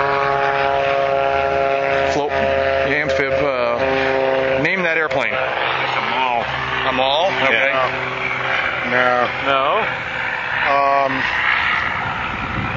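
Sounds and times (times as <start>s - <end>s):
propeller amphibious airplane droning overhead: 0.0s - 12.7s
people talking: 1.9s - 3.9s, 4.6s - 8.0s, 8.8s - 9.9s, 10.6s - 11.3s.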